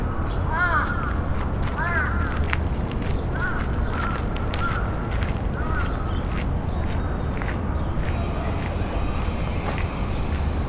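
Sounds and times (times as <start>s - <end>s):
raven calling: 0.1s - 10.6s
low rumble: 6.5s - 10.6s.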